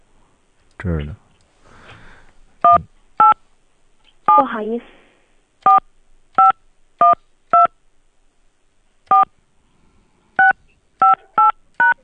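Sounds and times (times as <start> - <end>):
speech: 0.8 - 1.2, 4.4 - 5.0
touch-tone beeps from a phone keypad entering a number: 6.4 - 7.7, 10.4 - 12.0.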